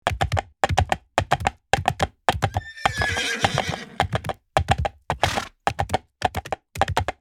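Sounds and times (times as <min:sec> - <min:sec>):
horse galloping fast: 0:00.1 - 0:07.2
horse neighing: 0:02.5 - 0:04.2, 0:05.2 - 0:05.5.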